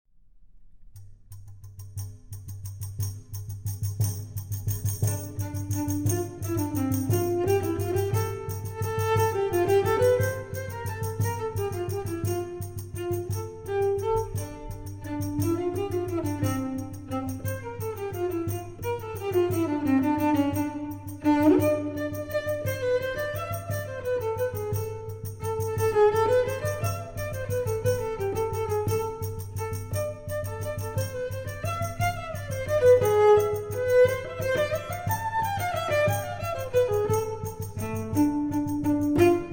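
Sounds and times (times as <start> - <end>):
cello: 1.3 - 39.5
tambourine: 1.7 - 39.5.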